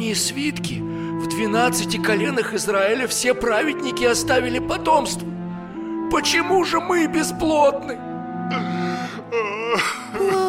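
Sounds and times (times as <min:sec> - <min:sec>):
speech: 0:00.0 - 0:05.4, 0:06.1 - 0:08.7
man weeping: 0:08.5 - 0:10.4.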